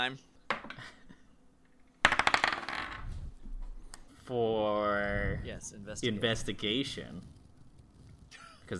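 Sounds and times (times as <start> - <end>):
speech: 0.0 - 1.0, 4.3 - 7.4
dice rattling on a hard tabletop: 2.0 - 3.1.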